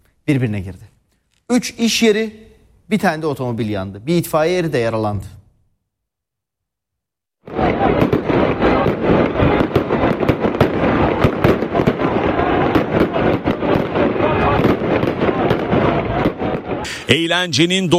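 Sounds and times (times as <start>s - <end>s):
speech: 0.3s - 0.9s, 1.5s - 5.4s, 17.1s - 17.9s
fireworks and firecrackers set off in the street by celebrating football fans: 7.5s - 17.0s.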